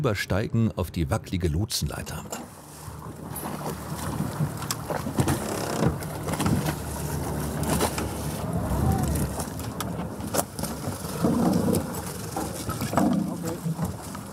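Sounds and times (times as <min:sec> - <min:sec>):
speech: 0:00.0 - 0:02.4
inflatable boat outboard motor droning at sea: 0:02.3 - 0:14.3
water splashing at sea: 0:02.5 - 0:14.3
gusty wind buffeting the microphone: 0:08.1 - 0:10.2.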